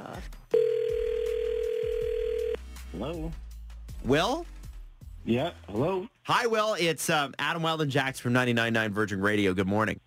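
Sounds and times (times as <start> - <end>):
phone dial tone: 0.5 - 2.6
speech: 3.0 - 3.4, 4.0 - 4.5, 5.2 - 10.0.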